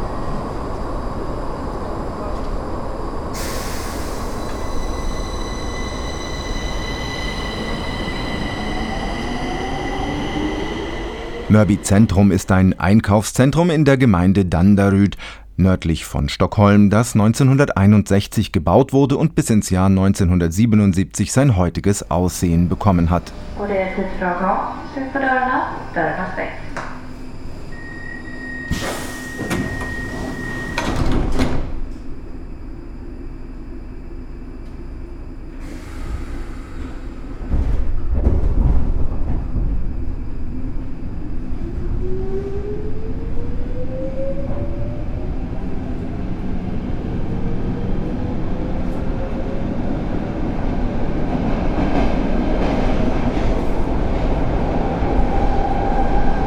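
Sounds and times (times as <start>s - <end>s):
heavy rumble of a metro train at a station platform in Stockholm: 0.0s - 27.8s, 28.7s - 56.4s
sharp bursts of air hiss from a metro train at a station in Stockholm: 3.4s - 4.8s
speech: 11.5s - 26.8s.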